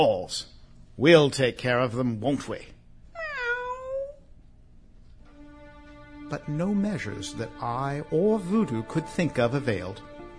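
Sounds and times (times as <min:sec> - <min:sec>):
speech: 0:00.0 - 0:02.8, 0:06.3 - 0:10.1
drawn-out cat meow: 0:03.2 - 0:04.3.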